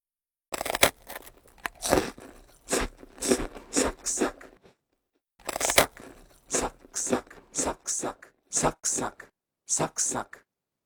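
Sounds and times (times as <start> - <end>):
person biting and chewing crisp crunchy food: 0.5 - 4.8, 5.4 - 9.1.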